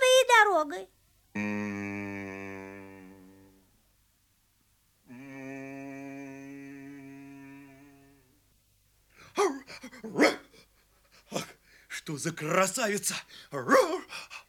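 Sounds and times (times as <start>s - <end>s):
speech: 0.6s - 1.9s, 12.1s - 14.4s
dog barking: 9.4s - 10.6s, 13.7s - 14.0s.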